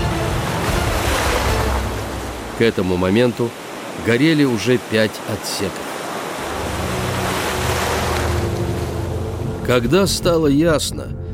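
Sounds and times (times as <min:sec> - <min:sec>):
rough stormy sea surf roaring: 0:00.0 - 0:10.0
speech: 0:02.6 - 0:05.9, 0:09.7 - 0:11.2.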